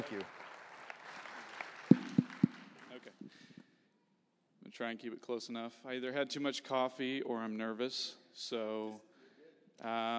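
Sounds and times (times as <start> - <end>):
speech: 0.0 - 0.4, 4.8 - 9.1, 9.8 - 10.1
audience applause: 0.0 - 3.2
loud claps: 0.0 - 3.6.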